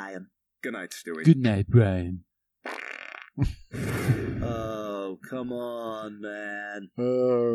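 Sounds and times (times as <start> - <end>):
speech: 0.1 - 2.8, 3.4 - 7.5
loud fart noises: 2.6 - 4.7.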